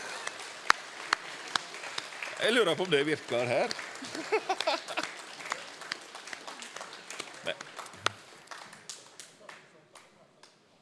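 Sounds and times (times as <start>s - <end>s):
sparse hand claps at a concert: 0.0s - 10.6s
speech: 2.4s - 5.2s, 7.4s - 7.7s
laughter: 2.4s - 5.6s.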